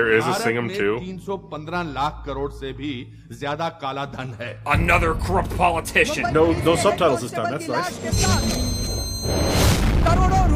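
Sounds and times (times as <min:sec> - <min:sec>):
speech: 0:00.0 - 0:09.5
deep explosion boom from a movie trailer: 0:09.4 - 0:10.5.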